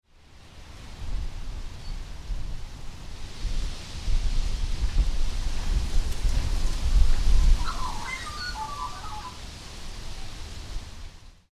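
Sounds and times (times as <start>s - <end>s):
wind: 0.0s - 11.5s
magpies calling: 7.0s - 9.4s.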